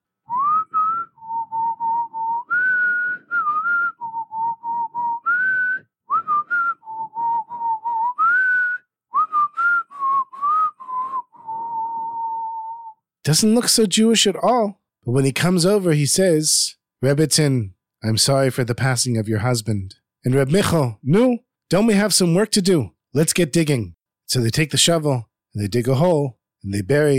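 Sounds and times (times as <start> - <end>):
lumberjack whistling a lively bouncy melody while walking: 0.2 - 13.1
speech: 13.3 - 27.1.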